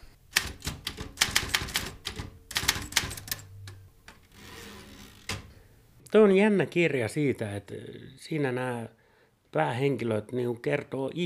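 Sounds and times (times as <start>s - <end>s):
rapid clacking of typewriter keys: 0.3s - 3.5s
speech: 6.1s - 11.2s.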